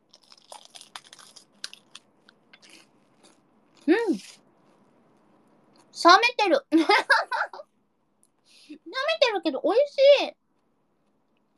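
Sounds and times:
curry-coloured bread roll crunching as it is bitten: 0:00.0 - 0:05.9
speech: 0:06.0 - 0:07.1, 0:08.9 - 0:10.4.

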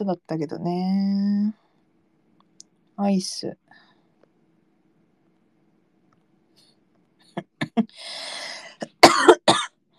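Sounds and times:
speech: 0:00.0 - 0:01.6, 0:03.0 - 0:03.8, 0:07.4 - 0:09.4
person coughing: 0:08.7 - 0:09.7.

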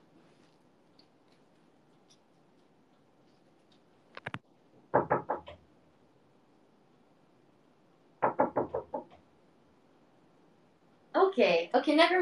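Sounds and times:
knocking on a door: 0:04.9 - 0:05.5, 0:08.2 - 0:09.1
speech: 0:11.4 - 0:12.2.

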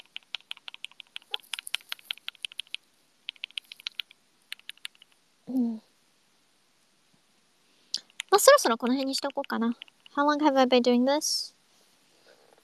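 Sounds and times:
typing on a keyboard: 0:00.0 - 0:05.2, 0:08.0 - 0:10.2
speech: 0:05.5 - 0:05.8, 0:08.4 - 0:11.6.

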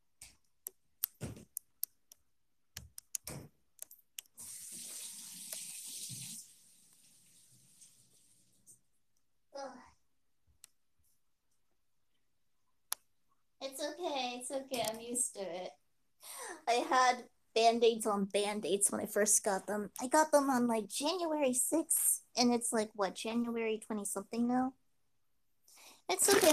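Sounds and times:
sharp clicks and knocks: 0:00.2 - 0:04.4
water running from a tap as hands are washed: 0:04.3 - 0:08.8
speech: 0:14.8 - 0:15.8, 0:16.7 - 0:24.8, 0:26.1 - 0:26.5.

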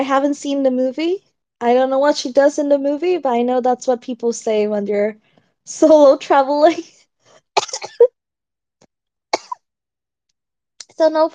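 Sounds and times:
speech: 0:00.0 - 0:07.0, 0:11.0 - 0:11.3
person coughing harshly: 0:07.6 - 0:08.1, 0:09.4 - 0:09.6.

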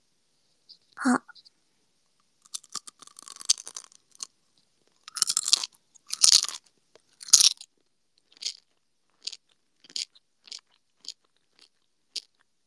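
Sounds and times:
speech: 0:01.0 - 0:01.3
crunching and chewing of crunchy gummy candy on a binaural dummy-head microphone: 0:02.5 - 0:04.3, 0:05.0 - 0:12.4.

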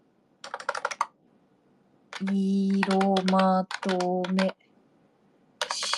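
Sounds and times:
typing on a PC computer keyboard: 0:00.4 - 0:01.2, 0:02.1 - 0:04.6, 0:05.6 - 0:05.9
speech: 0:02.2 - 0:04.6.

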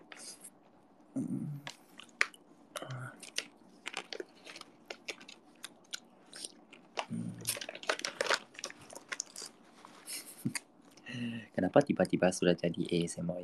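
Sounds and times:
speech: 0:01.1 - 0:01.7, 0:11.7 - 0:13.4
ASMR chewing and biting of food: 0:03.2 - 0:09.6.

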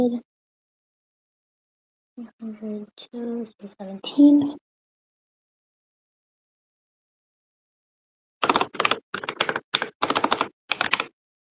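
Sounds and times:
speech: 0:00.0 - 0:00.3, 0:02.2 - 0:04.6
typing on a computer keyboard: 0:08.4 - 0:11.2.

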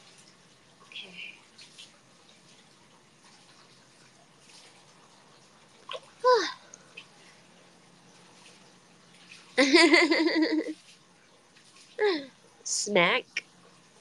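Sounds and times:
hot spring water pouring into small one-person bathtub: 0:00.0 - 0:12.6
playful vocalizing and babbling: 0:06.2 - 0:06.6
speech: 0:09.6 - 0:10.7, 0:12.9 - 0:13.3.

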